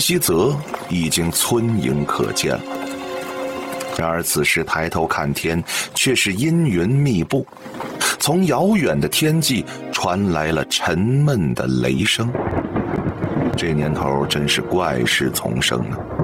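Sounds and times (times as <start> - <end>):
person talking: 0.0 - 2.7, 3.8 - 12.4, 13.6 - 16.0
distant muffled rolling thunder under dark clouds in July: 11.9 - 16.2.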